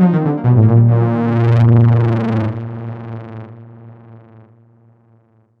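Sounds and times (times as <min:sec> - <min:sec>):
Roland Fantom XR synthesizer mini growl: 0:00.2 - 0:04.4.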